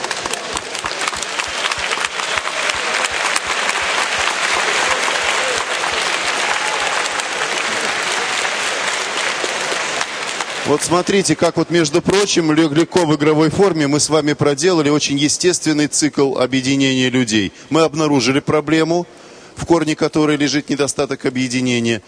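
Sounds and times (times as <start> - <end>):
large audience applauding: 0.0 - 12.6
speech: 10.7 - 22.0.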